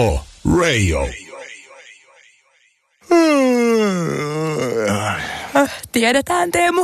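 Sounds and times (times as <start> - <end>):
speech: 0.0 - 1.2, 5.6 - 6.8
drawn-out groaning moan: 3.0 - 5.5
long voiced yawn: 3.0 - 5.6.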